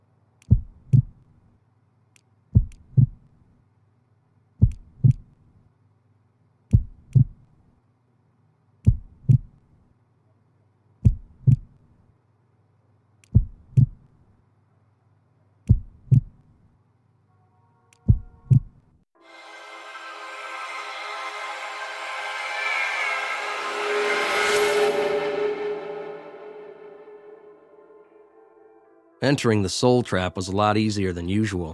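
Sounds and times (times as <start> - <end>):
slow steady heartbeat thumping: 0.5 - 1.2, 2.5 - 3.2, 4.6 - 5.3, 6.7 - 7.4, 8.9 - 9.6, 11.0 - 11.8, 13.3 - 14.0, 15.7 - 16.4, 18.1 - 18.8
low humming drone: 19.2 - 29.1
speech: 29.2 - 31.7.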